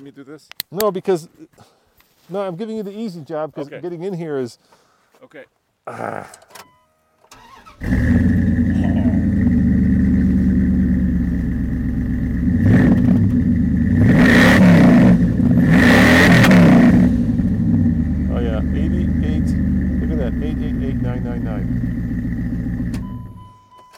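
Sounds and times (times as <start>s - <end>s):
speech: 0.0s - 6.6s
pickup truck engine with dual exhaust starting and revving: 7.4s - 22.9s.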